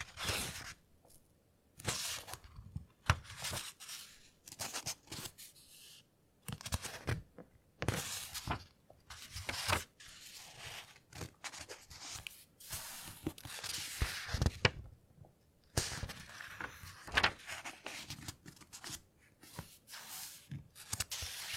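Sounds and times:
book pages turned slowly by hand: 0.0 - 0.8, 1.8 - 14.9, 15.7 - 21.5.

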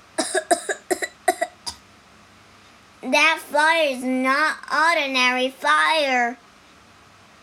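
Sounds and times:
person coughing harshly: 0.2 - 1.8
speech: 3.1 - 6.4.

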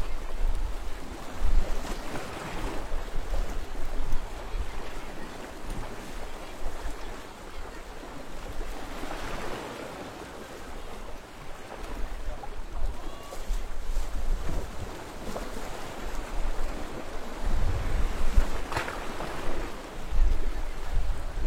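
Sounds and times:
waves washing against rocks below a seawall on the East Coast of Swatow: 0.0 - 21.4
strong sea wind buffeting: 17.4 - 18.6.

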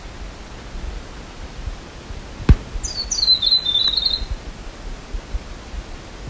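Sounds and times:
steady background hiss: 0.0 - 6.2
small bird call sliding downward in the jungle of Fiordland National Park, New Zealand: 2.7 - 4.3.

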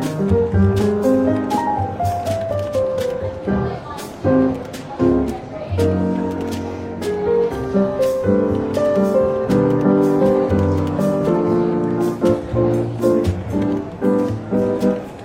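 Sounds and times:
people talking in a bookshop café: 0.0 - 15.2
soft jazz with walking bass line in a bookshop café: 0.0 - 15.2.

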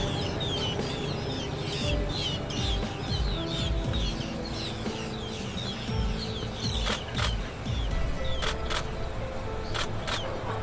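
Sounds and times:
black-headed gulls calling as a flock at a wetland at Futou Lake: 0.0 - 8.0
low rumbling background: 0.0 - 10.6.

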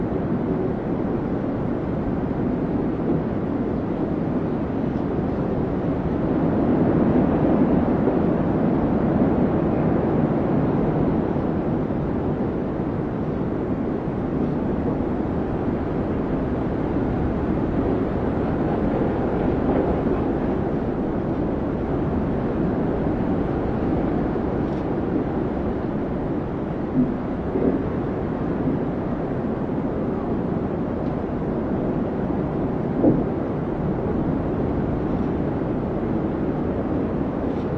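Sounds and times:
strong wind roaring with low rushing and dull hiss: 0.0 - 37.7.

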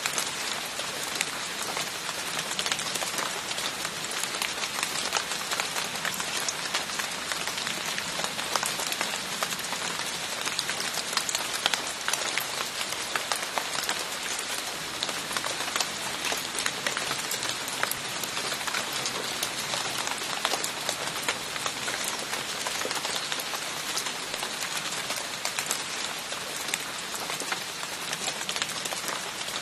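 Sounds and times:
raindrops falling from a tree pattering onto the ground: 0.0 - 29.6.

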